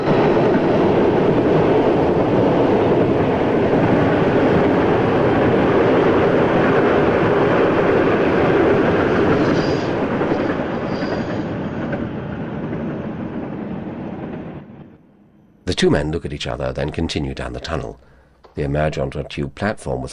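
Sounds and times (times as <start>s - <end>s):
train roaring past: 0.0s - 15.6s
faint high squeals: 9.3s - 11.9s
speech: 15.8s - 20.1s.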